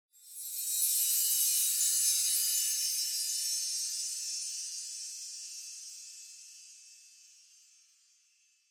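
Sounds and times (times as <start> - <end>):
long sparkle sound: 0.2 - 8.6.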